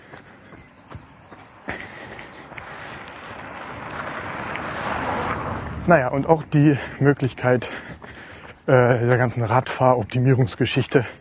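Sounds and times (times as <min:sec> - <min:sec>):
car driving past through a field: 0:01.3 - 0:09.8
speech: 0:05.9 - 0:07.9, 0:08.7 - 0:11.1.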